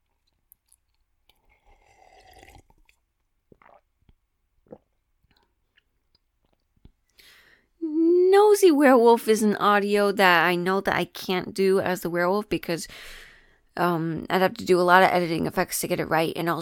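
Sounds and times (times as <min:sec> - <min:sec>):
person sipping or gulping water: 0:00.0 - 0:07.2
wet mouth clicks: 0:00.6 - 0:07.0
speech: 0:08.6 - 0:13.2, 0:13.8 - 0:16.6.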